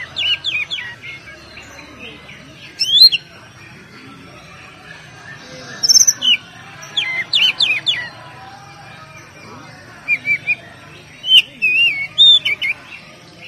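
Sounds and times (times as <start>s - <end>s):
Oriental magpie-robin singing varied song: 0.0s - 3.6s, 4.3s - 13.4s.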